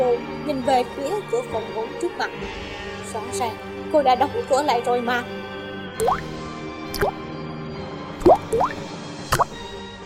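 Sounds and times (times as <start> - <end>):
speech: 0.0 - 5.4, 6.0 - 6.4, 7.0 - 7.2, 8.2 - 8.9
water dripping onto a floor: 6.0 - 6.3, 8.2 - 8.8.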